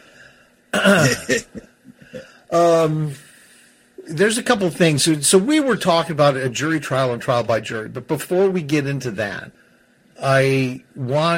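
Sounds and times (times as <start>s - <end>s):
speech: 0.8s - 1.7s, 2.5s - 3.2s, 4.1s - 9.6s, 10.2s - 11.3s
coughing and throat clearing: 0.8s - 3.0s.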